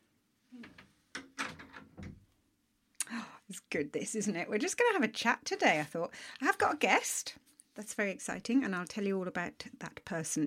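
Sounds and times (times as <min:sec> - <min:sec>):
door opening or closing with knocks, rattles and a latch clunk: 0:00.6 - 0:02.3
speech: 0:03.5 - 0:10.4.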